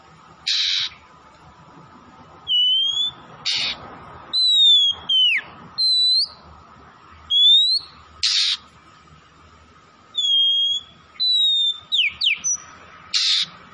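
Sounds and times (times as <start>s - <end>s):
Oriental magpie-robin from Tretes singing vigorously: 0.4s - 1.1s, 2.4s - 6.4s, 7.3s - 8.6s, 10.1s - 13.6s.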